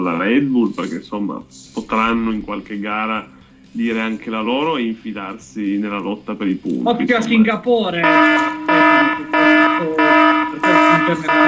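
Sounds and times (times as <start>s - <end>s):
speech: 0.0s - 11.4s
loud electronic alarm siren blaring: 8.0s - 11.4s.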